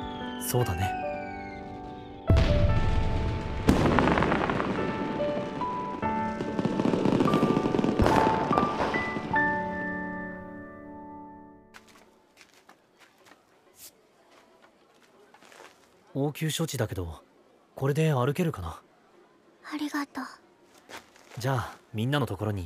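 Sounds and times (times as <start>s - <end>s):
speech: 0.4s - 1.0s, 16.3s - 18.9s, 19.6s - 20.4s, 21.4s - 22.6s
fireworks booming at a festival: 2.3s - 9.9s.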